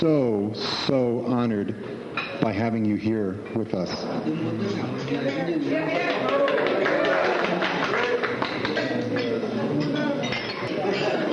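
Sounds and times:
speech: 0:00.0 - 0:06.5
murmur of many people talking at once: 0:00.0 - 0:11.3
glasses clinking during a toast at a council gathering: 0:09.1 - 0:11.3.

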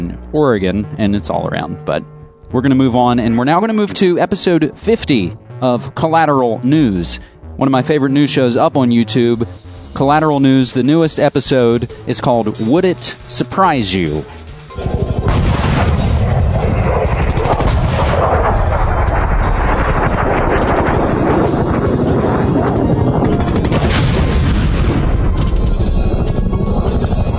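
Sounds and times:
speech: 0:00.1 - 0:15.1
crackling bursts: 0:14.7 - 0:27.3
dense continuous anti-aircraft gunfire: 0:14.7 - 0:27.3
heavy explosions booming: 0:14.7 - 0:27.3.

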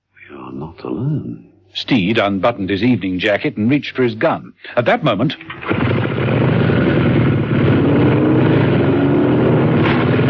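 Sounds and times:
speech: 0:00.6 - 0:05.9
two motorcycle engines roaring through a garage: 0:05.5 - 0:10.2.

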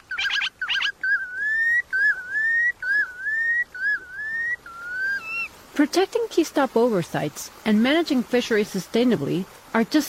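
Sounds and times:
red knot calls: 0:00.0 - 0:09.8
speech: 0:05.8 - 0:10.0.

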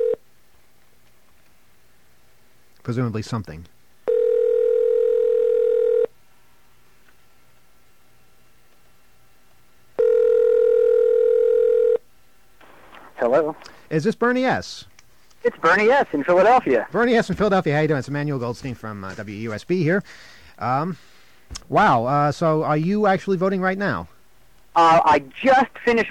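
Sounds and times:
speech: 0:02.9 - 0:03.8, 0:13.3 - 0:24.1, 0:24.8 - 0:26.1
telephone dialing tones: 0:04.1 - 0:06.1, 0:10.0 - 0:12.0.

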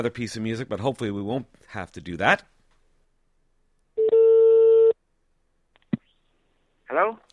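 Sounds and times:
speech: 0:00.0 - 0:02.5, 0:06.9 - 0:07.3
phone line beep: 0:04.0 - 0:05.0
phone line electronic ring tone: 0:04.0 - 0:05.0.

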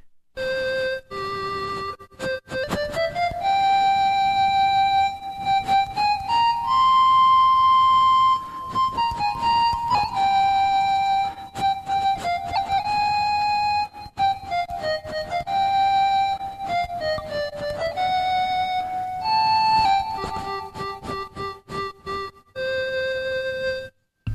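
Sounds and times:
breathy flute-like ocarina melody played on the Ocarina app on an iPhone: 0:00.4 - 0:24.3.

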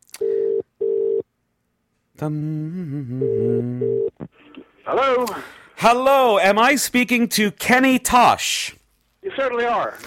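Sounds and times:
UK telephone ringing tone: 0:00.2 - 0:01.2, 0:03.2 - 0:04.1
speech: 0:02.2 - 0:04.3, 0:04.9 - 0:08.8, 0:09.4 - 0:10.0.

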